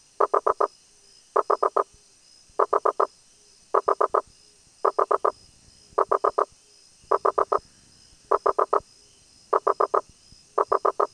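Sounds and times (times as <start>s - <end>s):
Rosenberg's gladiator frog Boana rosenbergi knocking calls: 0.0s - 0.7s, 1.4s - 1.9s, 2.6s - 3.1s, 3.7s - 5.4s, 6.0s - 6.5s, 7.1s - 7.6s, 8.3s - 8.8s, 9.5s - 11.1s
faint background hiss: 0.0s - 11.1s.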